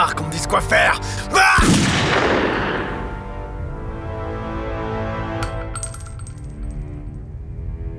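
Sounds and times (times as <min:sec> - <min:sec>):
speech: 0:00.1 - 0:01.8
gunshot fired and missing its target: 0:01.6 - 0:03.2
faint metallic clinks: 0:05.4 - 0:06.8.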